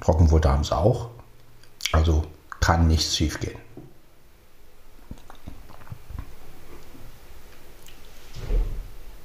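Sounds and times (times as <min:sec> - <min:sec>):
speech: 0:00.1 - 0:01.2, 0:01.9 - 0:03.6
soft crunching and clicking noises: 0:05.0 - 0:08.0.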